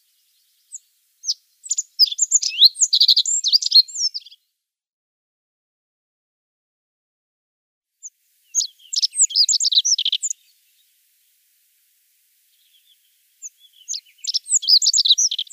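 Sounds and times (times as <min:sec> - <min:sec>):
rock bunting fast high thin twittering phrases: 0:00.0 - 0:04.4, 0:08.0 - 0:15.5.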